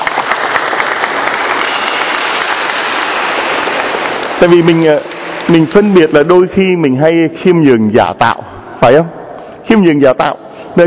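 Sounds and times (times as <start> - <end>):
audience applauding with dense steady clapping: 0.0 - 6.5
speech: 4.4 - 10.8.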